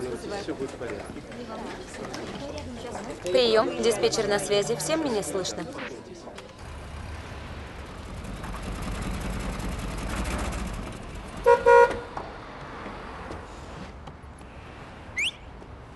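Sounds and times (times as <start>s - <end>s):
speech: 0.4s - 6.3s
small yellow car engine rumble pulling up to a workshop: 6.4s - 14.3s
small yellow car double horn toot: 11.4s - 12.1s.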